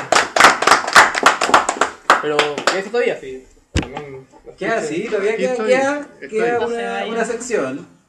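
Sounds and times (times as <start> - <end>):
applause from a small group: 0.0 - 2.8
speech: 2.2 - 8.0.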